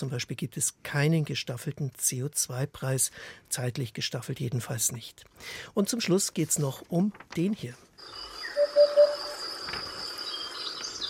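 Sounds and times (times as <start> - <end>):
speech: 0.0 - 8.3
crickets chirring: 8.0 - 11.0
hoopoe courtship call: 8.5 - 9.4.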